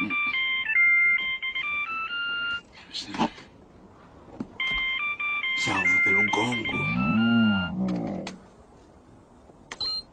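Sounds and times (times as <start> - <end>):
electronic telephone ringtone melody: 0.0 - 2.7, 4.6 - 7.8
speech: 2.9 - 3.3.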